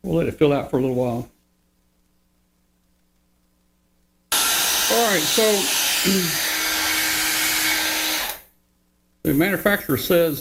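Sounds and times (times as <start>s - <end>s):
speech: 0.0s - 1.3s, 4.9s - 6.5s, 9.2s - 10.3s
hair dryer blowing on a balloon to stretch it: 4.3s - 8.4s.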